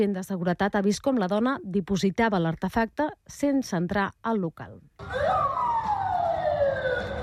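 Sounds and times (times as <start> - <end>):
speech: 0.0 - 5.6
police car siren wailing near Moscow Zoo Russia: 5.0 - 7.2.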